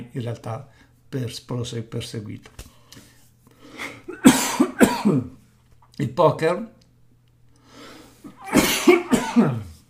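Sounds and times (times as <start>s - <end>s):
speech: 0.1s - 2.7s, 5.0s - 5.4s, 6.0s - 6.8s, 9.4s - 9.7s
person coughing: 3.9s - 5.4s, 8.3s - 9.7s.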